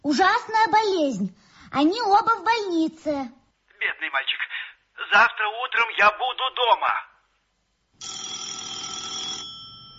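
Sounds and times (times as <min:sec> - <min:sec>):
speech: 0:00.0 - 0:07.1
telephone bell ringing: 0:08.0 - 0:09.9.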